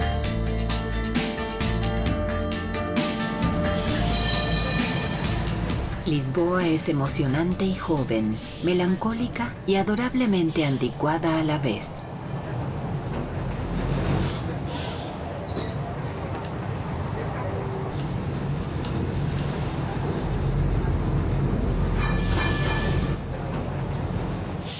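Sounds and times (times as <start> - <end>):
tram rumbling on rails: 0.0 - 24.7
tram metallic wheel squeals: 3.6 - 5.6, 22.0 - 23.2
speech: 6.1 - 12.0.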